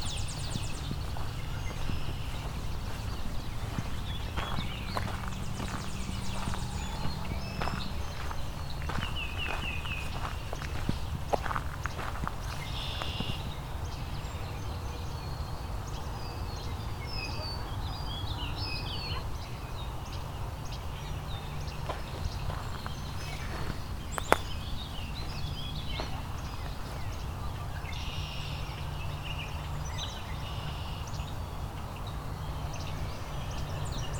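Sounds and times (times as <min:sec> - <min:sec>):
footsteps crunching: 0:00.0 - 0:13.6, 0:21.7 - 0:28.6
Tennessee warbler singing: 0:00.0 - 0:34.1
steady outdoor noise: 0:00.0 - 0:34.1.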